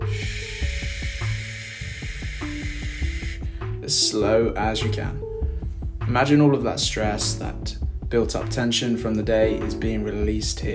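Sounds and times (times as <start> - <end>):
slow exhale hissed through clenched teeth during a relaxation breathing exercise: 0.0 - 3.7
speech: 3.9 - 5.2, 6.1 - 10.7.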